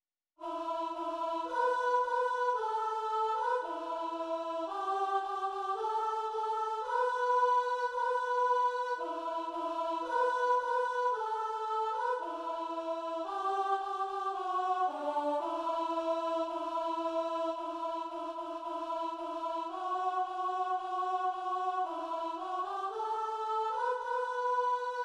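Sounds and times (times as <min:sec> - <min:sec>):
soprano singing a mass: 0:00.4 - 0:25.0.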